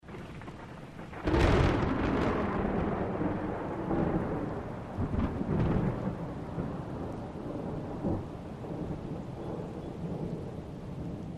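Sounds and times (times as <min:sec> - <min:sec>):
rolling thunder clap: 0:00.0 - 0:11.3.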